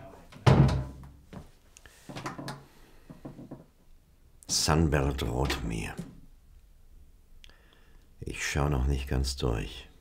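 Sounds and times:
faint knocks and rustles: 0.3s - 3.9s
wooden door shutting: 0.4s - 1.1s
speech: 4.6s - 6.1s, 8.5s - 9.9s.

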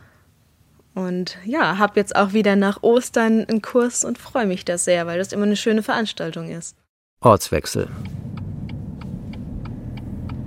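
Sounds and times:
speech: 1.0s - 8.2s
car driving into a residential street: 7.5s - 10.4s
light ticks: 8.0s - 10.4s.

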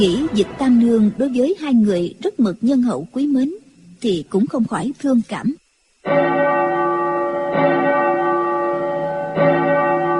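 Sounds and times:
speech: 0.0s - 6.7s
temple bell at a monastery rung urgently: 6.0s - 10.1s.

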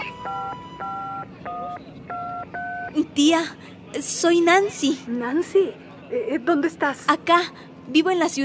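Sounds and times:
telephone number being dialed on a keypad: 0.0s - 3.0s
speech: 2.9s - 8.4s.

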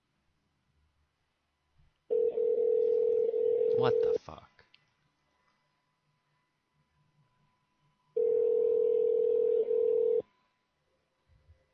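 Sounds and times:
telephone tone: 2.1s - 4.2s, 8.2s - 10.3s
speech: 3.8s - 4.5s.

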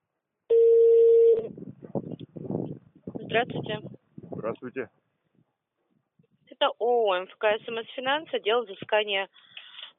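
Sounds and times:
telephone line tone during a placed call: 0.5s - 1.5s
speech: 3.3s - 5.0s, 6.6s - 9.6s.

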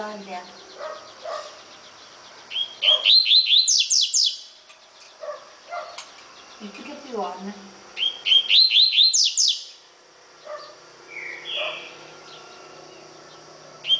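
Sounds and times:
speech: 0.0s - 1.5s, 6.6s - 7.7s
faint bird chirps: 0.1s - 7.0s, 8.0s - 13.9s
double-collared seedeater song of whistled notes and sweeping slurs: 2.5s - 4.5s, 8.0s - 9.7s, 11.1s - 11.9s
low warbling bird call: 2.5s - 4.6s, 8.0s - 9.8s, 11.1s - 12.6s.

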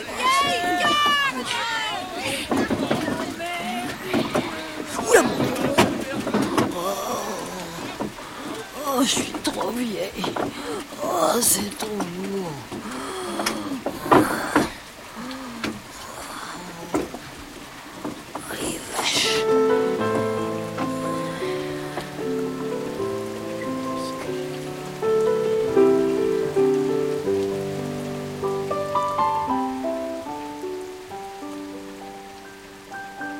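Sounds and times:
heavy rain falling: 0.0s - 33.3s
speech: 9.0s - 12.8s
music with sustained held notes: 19.3s - 33.3s.

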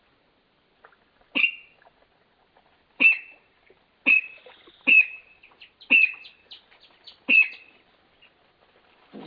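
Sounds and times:
spotted rail Pardirallus maculatus maculatus calling sharp high notes: 4.1s - 7.8s.

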